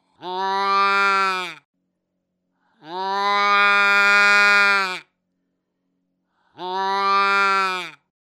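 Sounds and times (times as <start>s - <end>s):
doe in heat deer call: 0.2s - 1.6s, 2.8s - 5.0s, 6.6s - 8.0s.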